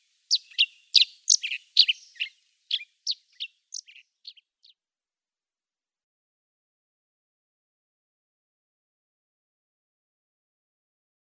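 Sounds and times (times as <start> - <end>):
Chestnut-shouldered Petronia chirping: 0.0 - 4.8.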